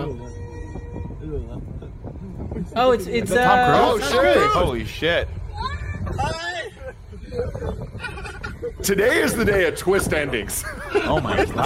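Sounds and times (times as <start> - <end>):
train rumbling along the rails: 0.0 - 11.6
speech: 2.7 - 5.4, 8.8 - 11.6
laughter: 6.1 - 11.6.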